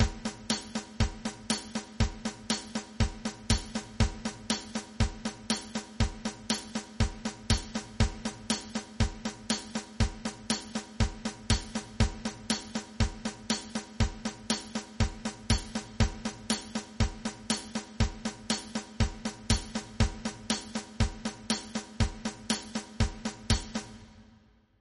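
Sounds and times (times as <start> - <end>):
jazz rhythm: 0.0 - 23.9.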